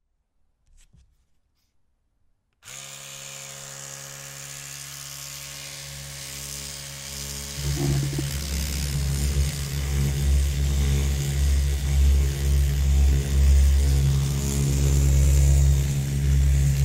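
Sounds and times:
electric toothbrush buzzing: 0:02.6 - 0:16.8.

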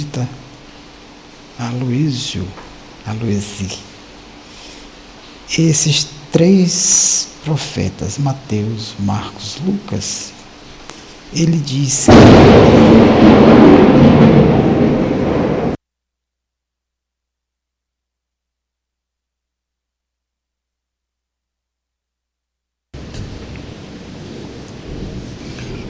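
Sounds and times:
steady wash of falling rain: 0:00.0 - 0:15.8, 0:23.0 - 0:25.8
speech: 0:01.6 - 0:03.9, 0:05.5 - 0:10.4, 0:11.3 - 0:14.5
loud deep rumble of thunder: 0:11.3 - 0:15.8, 0:23.0 - 0:25.8.

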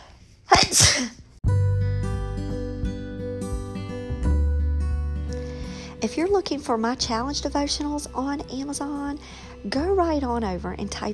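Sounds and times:
sneeze: 0:00.5 - 0:01.2
speech: 0:00.7 - 0:01.2, 0:06.0 - 0:11.1
instrumental music: 0:01.4 - 0:11.0.

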